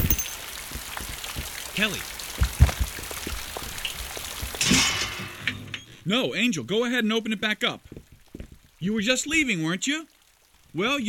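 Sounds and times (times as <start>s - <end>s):
drips and taps: 0.0s - 4.7s, 7.6s - 9.6s
rain falling outside an open door: 0.0s - 11.0s
speech: 1.8s - 2.1s, 6.1s - 7.9s, 8.8s - 10.1s, 10.8s - 11.0s.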